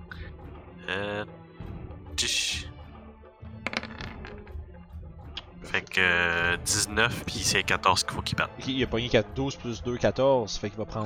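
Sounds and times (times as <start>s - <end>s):
speech: 0.9s - 1.4s, 2.2s - 2.6s, 6.0s - 11.0s
dice clattering across a hard surface: 3.6s - 4.5s.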